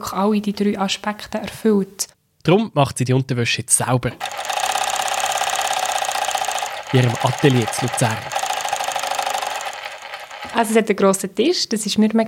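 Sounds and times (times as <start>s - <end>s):
speech: 0.1s - 4.5s, 6.9s - 8.4s, 10.5s - 12.2s
sewing machine whirring in a workshop: 4.2s - 10.8s.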